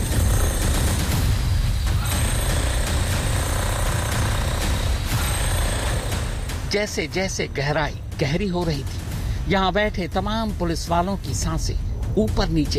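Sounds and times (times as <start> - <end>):
drilling machine pounding into the ground digging a pit: 0.0 - 6.8
speech: 6.7 - 12.7.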